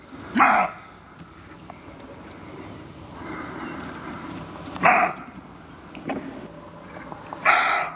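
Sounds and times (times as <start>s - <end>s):
roe deer barking outdoors: 0.4s - 0.9s, 4.8s - 5.3s, 7.4s - 7.9s.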